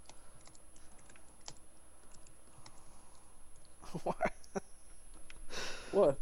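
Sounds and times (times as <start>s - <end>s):
typing on a computer keyboard while writing a tweet: 0.0s - 3.8s
low hum: 0.0s - 6.2s
speech: 3.9s - 4.3s, 6.0s - 6.2s.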